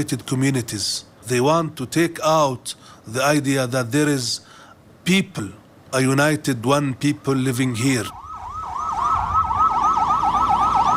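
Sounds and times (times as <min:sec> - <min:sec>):
speech: 0:00.0 - 0:08.2
low road rumble: 0:00.0 - 0:10.9
ambulance siren wailing on a main road into a Palestinian city: 0:07.1 - 0:10.9.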